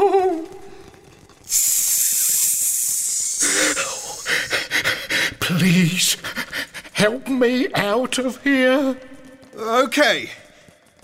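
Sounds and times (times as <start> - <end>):
snake hissing: 1.5 - 5.4
speech: 5.5 - 6.4, 7.0 - 10.4.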